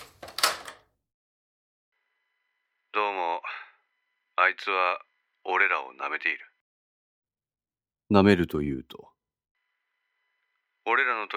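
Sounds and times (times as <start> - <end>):
door opening with a rattling clatter: 0.0 - 0.9
speech: 4.5 - 6.5, 8.1 - 9.1, 10.9 - 11.3.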